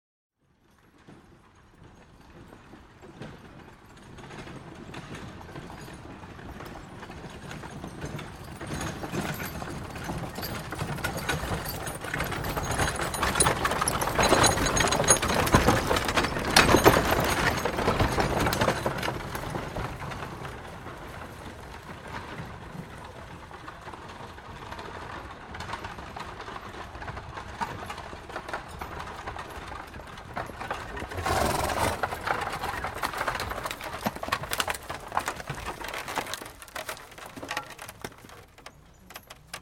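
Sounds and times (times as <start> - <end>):
horse-drawn wagons passing: 0.4 - 39.5.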